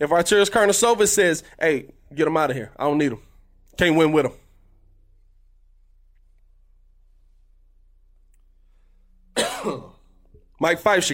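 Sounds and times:
speech: 0.0s - 4.4s, 10.6s - 11.1s
single sharp throaty cough: 9.4s - 10.0s.

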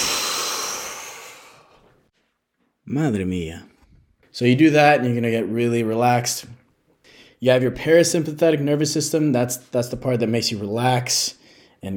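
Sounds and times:
long human breath through the nose and mouth in a relaxation breathing exercise: 0.0s - 2.0s, 7.0s - 7.4s, 11.4s - 11.8s
speech: 2.9s - 3.7s, 4.4s - 6.6s, 7.4s - 11.9s.

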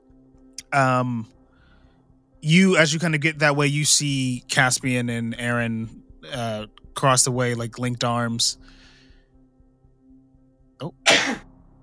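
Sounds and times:
speech: 0.7s - 1.4s, 2.4s - 8.9s, 10.8s - 11.4s
sneeze: 11.1s - 11.5s.

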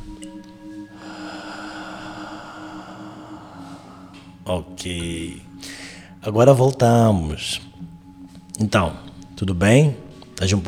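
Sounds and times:
long steady breath exhaled through the mouth in a breathing exercise: 0.9s - 4.4s
speech: 4.5s - 5.5s, 6.2s - 7.7s, 8.6s - 10.6s.

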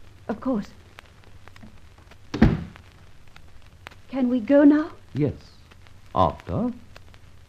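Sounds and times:
speech: 0.3s - 0.8s, 4.1s - 6.8s
house door pushed shut: 2.3s - 2.8s.

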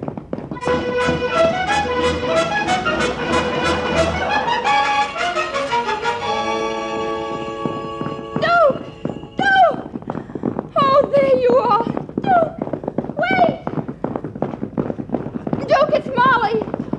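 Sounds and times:
horse hooves clip-clopping: 0.0s - 16.9s
sustained musical tones: 0.6s - 9.4s.

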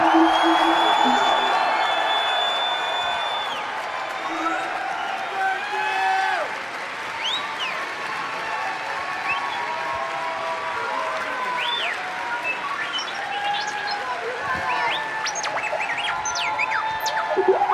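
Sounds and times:
high whistles and whoops: 0.0s - 6.2s, 11.6s - 17.7s
large crowd cheering and applauding: 0.0s - 17.7s.

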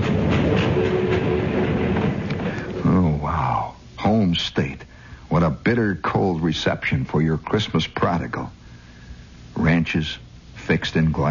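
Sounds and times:
train rattling along the tracks across Nebraska: 0.0s - 2.9s
speech: 4.3s - 8.6s, 9.6s - 11.3s.

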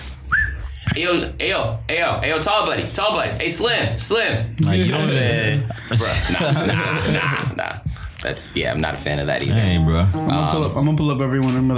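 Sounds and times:
person whistling to call a waiter: 0.3s - 0.8s
speech: 1.0s - 11.7s
laughter: 4.8s - 8.1s.

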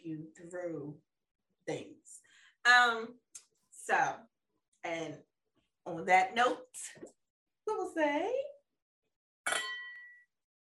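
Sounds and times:
speech: 0.3s - 3.2s, 3.9s - 8.6s
glasses clinking in a toast: 9.5s - 10.2s.

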